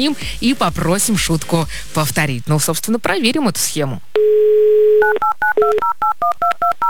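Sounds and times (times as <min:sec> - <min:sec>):
speech: 0:00.0 - 0:04.1, 0:05.6 - 0:06.8
touch-tone beeps of phone number being dialed: 0:04.2 - 0:06.8.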